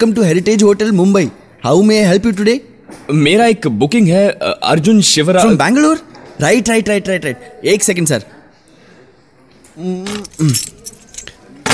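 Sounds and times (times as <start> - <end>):
speech: 0.0 - 8.4, 9.8 - 10.8
bunch of hotel room keys jangling as handed over at a hotel reception in Mumbai: 10.0 - 11.7.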